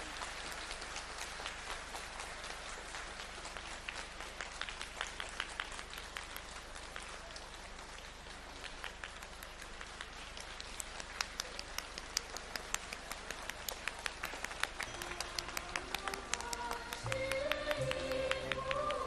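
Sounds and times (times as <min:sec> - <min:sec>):
large audience clapping: 0:00.0 - 0:19.0
soft music: 0:14.8 - 0:19.0.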